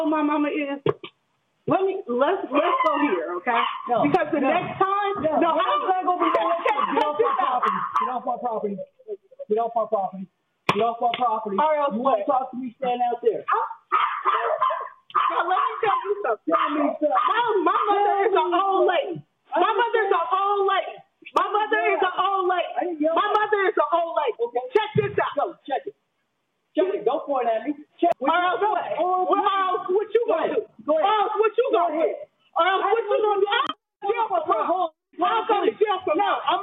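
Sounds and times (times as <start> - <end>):
speech: 0.0 - 1.0, 1.7 - 26.0, 26.8 - 36.6
agitated voices: 1.0 - 9.6, 13.2 - 26.0, 28.1 - 36.6
small dogs barking and yipping: 2.5 - 8.3, 13.5 - 18.4.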